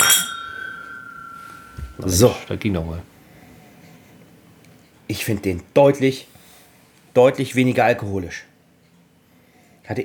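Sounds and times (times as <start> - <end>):
whiskey glass clinking as it is picked up: 0.0 - 2.6
speech: 2.0 - 3.1, 5.1 - 6.3, 7.2 - 8.5, 9.9 - 10.0.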